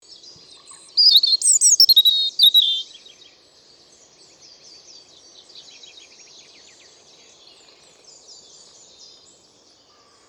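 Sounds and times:
European robin song: 1.0s - 2.9s.

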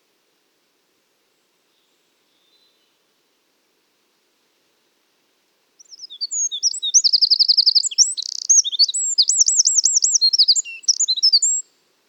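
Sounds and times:
Eurasian wren Troglodytes troglodytes singing: 5.8s - 11.7s.

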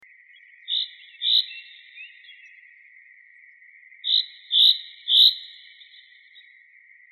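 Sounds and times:
common chaffinch Fringilla coelebs calls: 0.3s - 2.7s, 4.0s - 6.5s.

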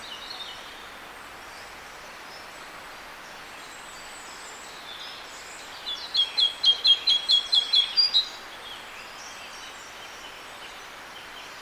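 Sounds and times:
light background hiss: 0.0s - 11.6s
Great tit Parus major singing: 5.0s - 10.0s.

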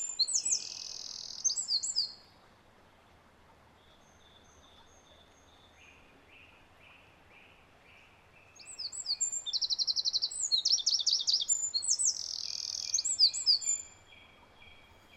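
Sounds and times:
Eurasian wren Troglodytes troglodytes song with rapid trills: 0.0s - 2.1s, 8.6s - 14.1s.

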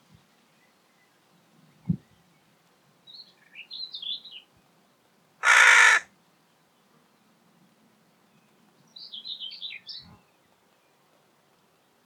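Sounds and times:
Carrion crow Corvus corone uttering a rasping caw: 5.4s - 6.1s.

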